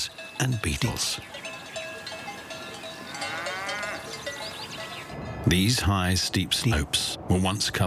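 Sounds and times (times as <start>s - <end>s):
cowbells clanking: 0.0s - 5.2s
cattle grazing in a forest: 0.0s - 5.7s
speech: 0.4s - 1.4s, 5.4s - 7.8s
cow lowing: 2.3s - 5.1s.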